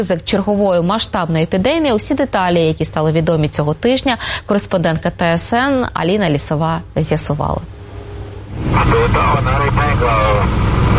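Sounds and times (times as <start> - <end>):
speech: 0.0 - 7.8, 8.6 - 10.9
military aircraft engine drone: 7.7 - 10.9.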